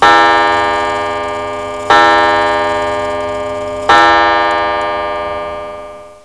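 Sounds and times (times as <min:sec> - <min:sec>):
mechanical beats: 0:00.0 - 0:05.4.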